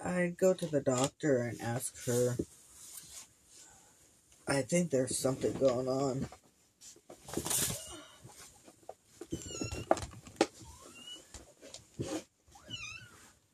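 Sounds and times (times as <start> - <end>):
speech: 0.1 - 2.5, 4.5 - 7.7
rustling: 0.6 - 4.0, 5.1 - 13.5
cat meowing: 12.6 - 13.2.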